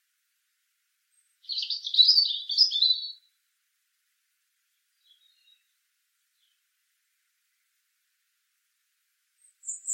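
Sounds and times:
European robin Erithacus rubecula song: 0:01.1 - 0:03.3, 0:04.7 - 0:06.7, 0:09.4 - 0:09.9.

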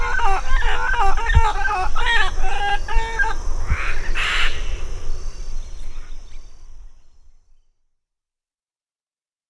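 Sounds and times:
bird clucking calls: 0:00.0 - 0:04.6.

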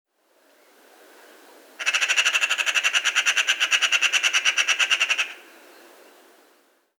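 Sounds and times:
faint background hiss: 0:00.1 - 0:06.9
Eurasian magpie Pica pica giving a harsh rattling chatter: 0:01.8 - 0:05.4.

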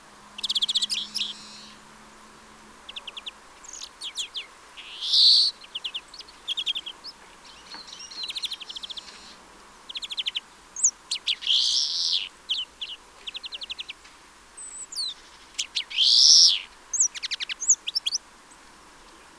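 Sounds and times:
European greenfinch trilled calls: 0:00.4 - 0:01.8, 0:02.8 - 0:14.0, 0:14.6 - 0:18.2.

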